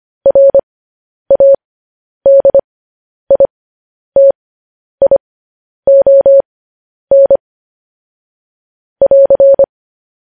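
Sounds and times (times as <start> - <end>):
Morse code beeps in a steady mid-pitched tone: 0.3 - 0.6, 1.3 - 1.6, 2.3 - 2.6, 5.9 - 6.4, 7.1 - 7.4, 9.0 - 9.7.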